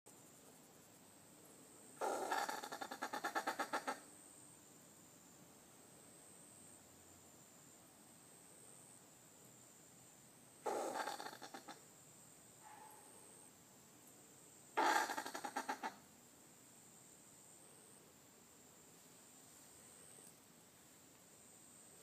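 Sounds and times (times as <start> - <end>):
possum noise: 2.0 - 4.1, 10.6 - 11.8, 14.8 - 16.1.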